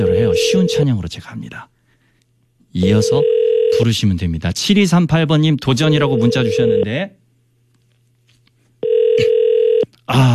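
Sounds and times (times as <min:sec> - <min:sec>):
speech: 0:00.0 - 0:01.7, 0:02.7 - 0:07.2, 0:10.1 - 0:10.3
steady telephone tone on a call to a landline: 0:02.9 - 0:03.9, 0:05.9 - 0:06.9, 0:08.8 - 0:09.9.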